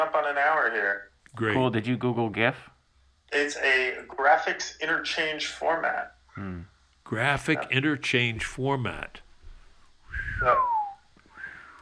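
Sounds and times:
speech: 0.0 - 2.7, 3.3 - 9.2, 10.1 - 10.8
person wearing a mask whistling a descending note: 10.1 - 11.8.

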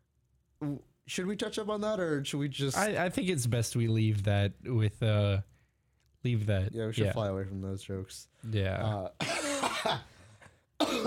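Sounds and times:
speech: 0.6 - 5.5, 6.2 - 10.1
person coughing: 9.2 - 10.2, 10.8 - 11.0.

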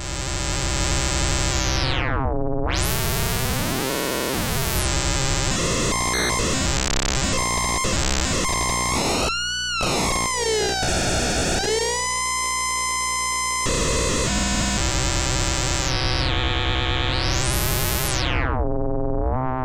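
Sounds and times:
FM synthesizer tone through wave-shaping module grind output: 0.0 - 19.5.

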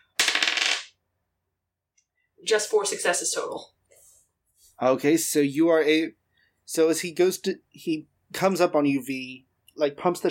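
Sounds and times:
die rolled during a tabletop role-playing game: 0.2 - 0.9
speech: 2.4 - 3.8, 4.8 - 10.2.

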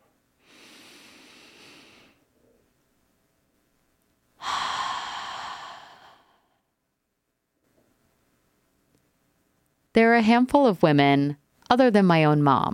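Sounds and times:
person taking a deep grounding breath: 0.4 - 2.3, 4.4 - 6.7
speech: 10.0 - 12.7.

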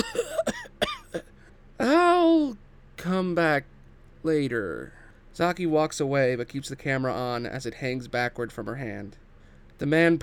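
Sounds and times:
wounded man coughing up blood: 0.0 - 1.3
speech: 3.2 - 9.2, 9.8 - 10.2.

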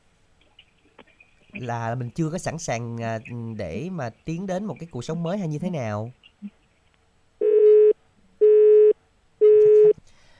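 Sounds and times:
speech: 1.6 - 6.6
telephone busy tone after a dropped call: 7.4 - 10.0.

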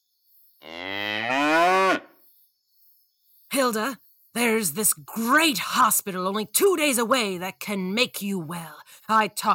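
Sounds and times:
cow mooing: 0.6 - 2.1
speech: 3.7 - 9.5.

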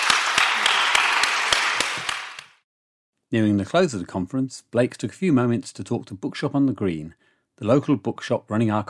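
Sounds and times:
audience applause at a conference: 0.0 - 2.6
speech: 3.3 - 8.8.

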